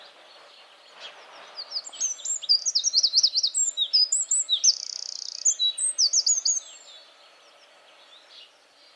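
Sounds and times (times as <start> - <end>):
faint background noise: 0.0 - 8.9
Eurasian wren twittering and trilling: 1.5 - 8.2.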